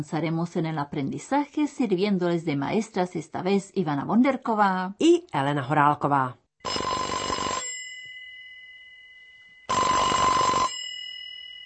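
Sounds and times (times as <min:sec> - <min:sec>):
speech: 0:00.0 - 0:06.4
old-fashioned telephone bell ringing: 0:06.6 - 0:11.6.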